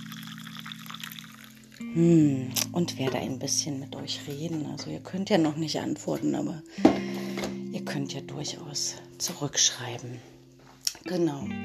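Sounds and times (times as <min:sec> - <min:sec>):
coffee pouring into a cup: 0:00.0 - 0:01.8
speech: 0:01.8 - 0:07.1, 0:07.9 - 0:10.4, 0:11.0 - 0:11.6.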